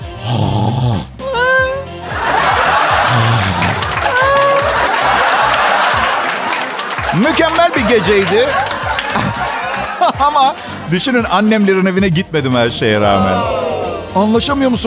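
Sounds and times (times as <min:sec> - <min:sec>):
person imitating loud exaggerated abnormal snoring: 0:00.0 - 0:01.8, 0:03.1 - 0:03.8
laughter: 0:02.0 - 0:11.8
speech: 0:07.2 - 0:09.3, 0:10.2 - 0:14.8.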